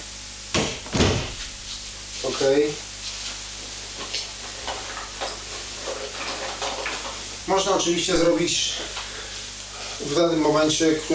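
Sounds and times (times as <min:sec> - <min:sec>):
door closing clunk: 0:00.6 - 0:01.4
door opening thump: 0:00.6 - 0:01.5
speech: 0:02.3 - 0:02.9, 0:07.5 - 0:09.0, 0:10.0 - 0:11.1.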